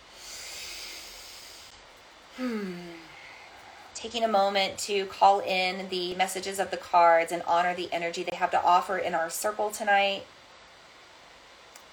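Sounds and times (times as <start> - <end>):
person taking a deep breath: 0.0 - 1.7, 2.4 - 3.9
speech: 2.4 - 2.9, 4.0 - 10.4.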